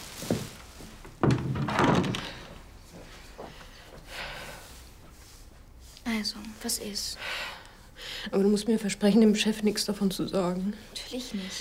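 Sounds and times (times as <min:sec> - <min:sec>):
rattling rustle: 0:00.0 - 0:02.6
door pushed shut with a dull solid thunk: 0:01.2 - 0:02.4
speech: 0:06.2 - 0:07.6, 0:08.2 - 0:11.5.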